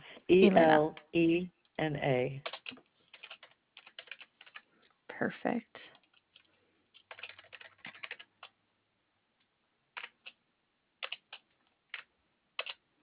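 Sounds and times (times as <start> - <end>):
speech: 0.3 - 2.8, 5.2 - 5.8
typing on a computer keyboard: 2.4 - 4.6, 6.0 - 8.6, 10.0 - 10.4, 11.0 - 12.8.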